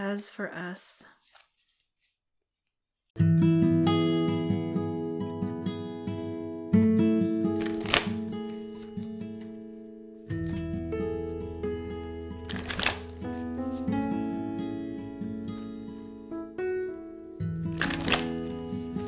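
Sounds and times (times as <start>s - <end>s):
speech: 0.1s - 1.2s
tarot cards shuffled to pull a card: 1.2s - 3.0s, 7.6s - 9.8s, 12.4s - 14.2s, 17.7s - 19.0s
soft steady instrumental music with sustained tones: 3.2s - 19.0s.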